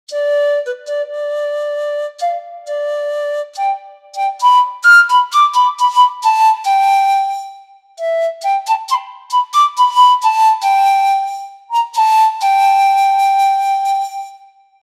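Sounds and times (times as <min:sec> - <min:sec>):
Andean pan flute: 0:00.1 - 0:14.8.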